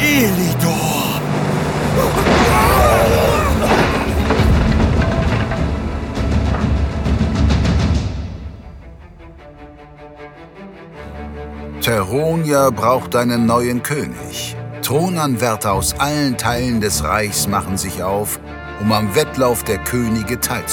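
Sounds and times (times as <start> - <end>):
low tonal drone: 0.0 - 7.4
giant ocean wave crashing: 0.2 - 8.6
speech: 12.1 - 20.7.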